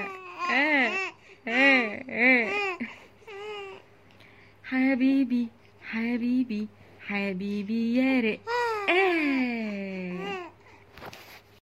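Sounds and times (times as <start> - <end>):
baby crying in rising-and-falling wails: 0.0 - 3.9, 8.5 - 9.4
faint low hum: 0.0 - 11.6
speech: 4.9 - 9.5.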